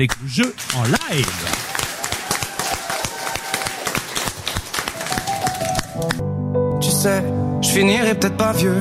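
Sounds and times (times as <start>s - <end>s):
speech: 0.0s - 1.7s, 7.0s - 8.7s
crowd applauding at an amusement park: 0.0s - 6.2s.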